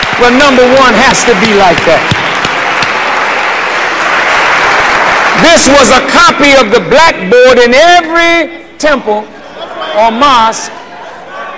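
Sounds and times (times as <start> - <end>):
audience applause: 0.0 - 6.1
speech: 0.2 - 2.2, 5.4 - 9.4, 10.0 - 10.8.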